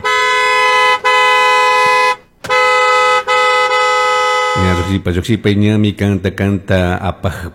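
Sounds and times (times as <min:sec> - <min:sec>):
taxi horn honking in multi-tone blares: 0:00.0 - 0:05.1
speech: 0:04.9 - 0:07.5.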